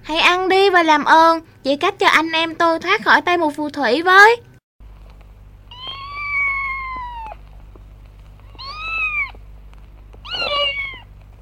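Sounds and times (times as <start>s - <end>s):
steady low hum: 0.0s - 11.4s
speech: 0.1s - 4.5s
cat meowing: 5.7s - 7.5s, 8.4s - 9.4s, 10.2s - 11.1s.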